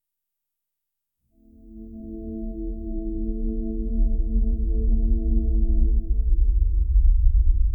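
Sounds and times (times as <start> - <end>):
cinematic documentary music: 1.4 - 7.6.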